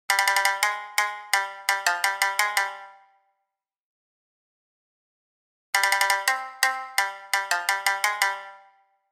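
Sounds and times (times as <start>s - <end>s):
Jamisen playing: 0.1s - 3.2s, 5.8s - 8.9s.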